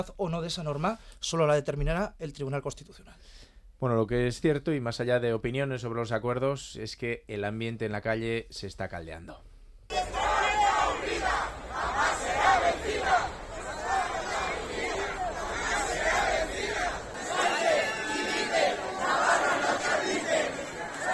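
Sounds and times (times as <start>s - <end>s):
speech: 0.0s - 9.5s
large crowd of protesters shouting and chanting outdoors: 9.9s - 21.1s.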